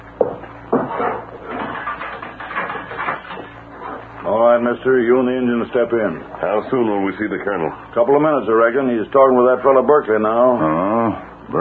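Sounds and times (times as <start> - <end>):
door scraping and rattling as it swings: 0.8 - 4.0
speech: 4.2 - 11.5.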